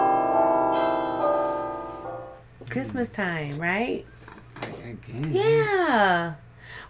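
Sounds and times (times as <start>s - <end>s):
small bell ringing: 0.0s - 1.7s
speech: 2.8s - 6.8s.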